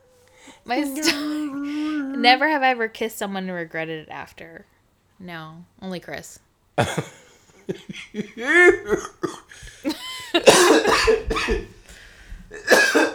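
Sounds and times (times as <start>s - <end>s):
speech: 0.7s - 11.7s
throaty laugh-like vocalizing: 6.8s - 10.6s
harsh coughs: 6.8s - 11.8s, 12.5s - 13.1s.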